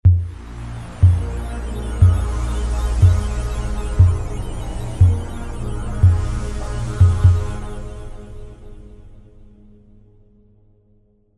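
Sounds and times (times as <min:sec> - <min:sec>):
midi music: 0:00.1 - 0:08.7.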